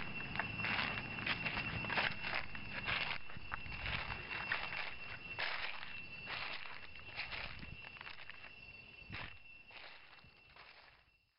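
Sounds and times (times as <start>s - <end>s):
footsteps crunching through large dry leaves on a forest path in Cambodia: 0.0s - 11.0s
steady high insect whine: 0.0s - 11.2s.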